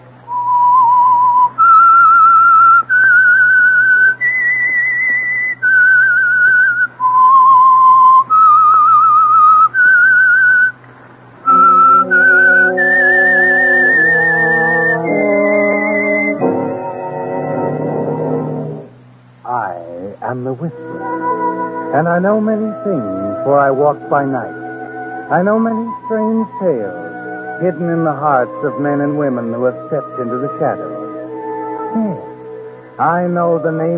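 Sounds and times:
whistled theme tune: 0.3 - 10.8, 11.4 - 18.6, 20.7 - 32.8
orchestral chord swell: 11.4 - 18.9, 20.3 - 33.9
speech: 23.8 - 24.6, 25.3 - 27.0, 27.6 - 30.9, 33.0 - 33.9.

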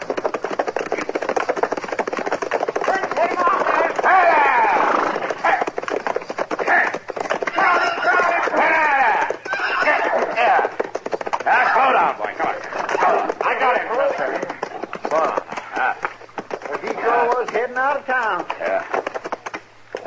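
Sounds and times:
runaway horse galloping: 0.0 - 20.0
runaway horse neighing: 3.2 - 5.7, 6.6 - 10.8, 11.4 - 17.6.

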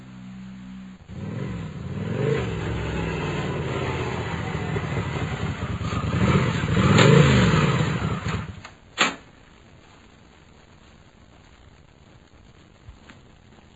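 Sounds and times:
motorcycle engine revving and idling outside a house: 0.0 - 8.7.

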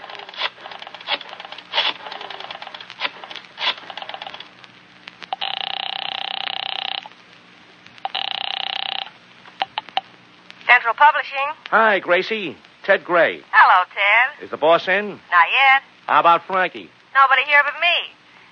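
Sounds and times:
telephone ringing in electronic buzzes: 5.3 - 7.1, 8.0 - 10.0
speech: 10.9 - 18.2.

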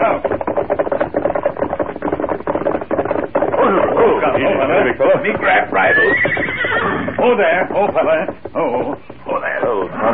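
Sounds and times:
horse hooves clopping: 0.0 - 10.1
horse neighing: 3.5 - 7.8, 8.5 - 10.1
speech: 4.3 - 6.4, 7.2 - 10.1.

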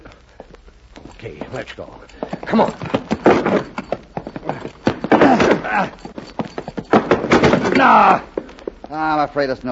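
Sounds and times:
speech: 1.2 - 3.4, 7.8 - 8.3, 8.9 - 9.7
people grunting with strain: 4.3 - 6.3, 6.9 - 8.6
people shoving and pounding against locked tool shed door: 4.9 - 8.2.

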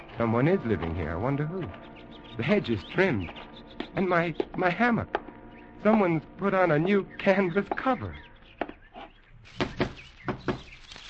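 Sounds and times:
speech: 0.2 - 5.2, 5.8 - 8.2
firm raps knocking on a door: 9.6 - 10.7.

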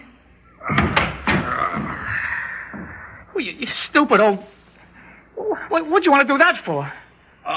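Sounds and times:
door creaking squeal: 0.6 - 2.1
door rattling bang as it opens or shuts: 0.7 - 1.6
door thud: 0.7 - 1.9
speech: 4.0 - 4.5, 5.7 - 7.5.

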